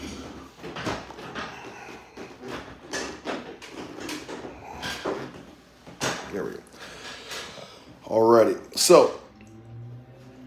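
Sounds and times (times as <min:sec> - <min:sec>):
reclining chair mechanism scraping and creaking while tilted back: 0:00.0 - 0:07.7
speech: 0:06.4 - 0:06.7, 0:08.1 - 0:09.2.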